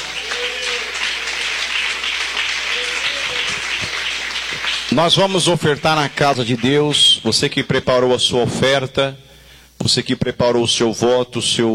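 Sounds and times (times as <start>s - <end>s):
audience applauding: 0.0s - 7.1s
people cheering: 0.0s - 7.1s
speech: 5.0s - 11.7s.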